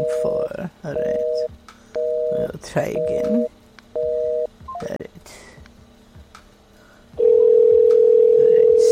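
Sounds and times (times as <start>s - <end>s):
speech: 0.0s - 1.7s, 2.3s - 3.6s
telephone ringing tone over the phone line: 1.0s - 4.8s, 7.2s - 8.8s.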